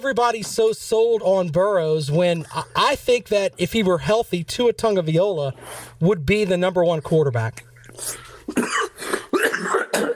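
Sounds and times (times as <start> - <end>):
speech: 0.0 - 8.8
person clearing throat: 8.5 - 10.1.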